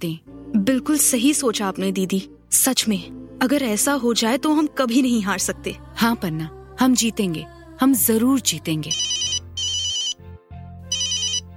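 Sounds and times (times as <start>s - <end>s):
speech: 0.0s - 9.2s
mobile phone ringtone for an incoming call: 8.9s - 10.2s, 10.9s - 11.5s.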